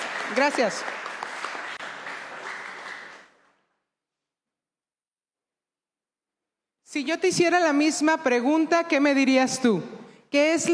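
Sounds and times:
crowd applauding: 0:00.0 - 0:03.6
speech: 0:00.3 - 0:01.1, 0:06.9 - 0:10.7.

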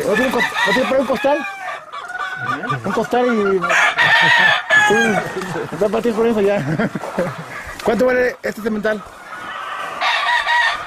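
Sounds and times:
rooster crowing with a long strained call: 0:00.0 - 0:05.8, 0:09.4 - 0:10.8
rooster clucking: 0:00.0 - 0:10.8
speech: 0:00.1 - 0:01.6, 0:02.4 - 0:09.2
laughter: 0:02.4 - 0:07.9.

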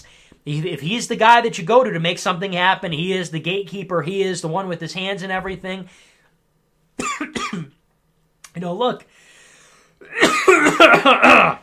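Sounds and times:
speech: 0:00.4 - 0:06.1, 0:08.6 - 0:09.2, 0:10.0 - 0:11.6
harsh throat clearing and coughing: 0:07.0 - 0:07.8, 0:10.0 - 0:11.6.

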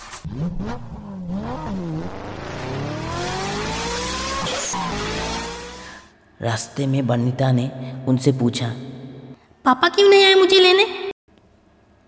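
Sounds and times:
speech: 0:00.3 - 0:02.9, 0:06.4 - 0:09.0, 0:09.6 - 0:11.0
car loaded with luggage revving and accelerating away: 0:00.3 - 0:06.1.

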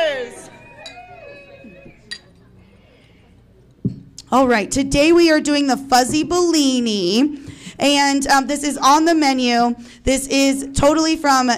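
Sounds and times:
faint murmuring voices: 0:00.0 - 0:03.8
glasses clinking in a toast: 0:00.5 - 0:02.5
speech: 0:04.3 - 0:11.5.

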